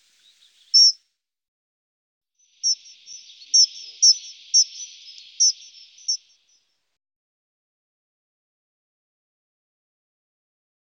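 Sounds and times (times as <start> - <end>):
dunnock song: 2.6 - 6.3.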